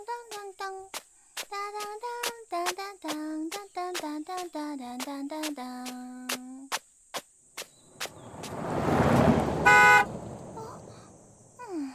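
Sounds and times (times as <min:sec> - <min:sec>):
crickets chirping: 0:00.0 - 0:11.9
car driving past: 0:07.7 - 0:11.6
car horn honk: 0:09.0 - 0:10.9.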